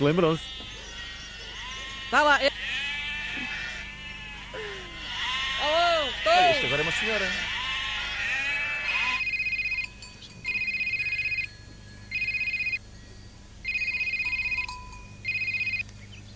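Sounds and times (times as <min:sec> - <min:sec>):
speech: 0:00.0 - 0:00.7, 0:02.1 - 0:02.9, 0:05.6 - 0:07.5
sheep bleating: 0:00.0 - 0:09.3
electronic phone ringtone trilling: 0:09.0 - 0:12.8, 0:13.6 - 0:15.8.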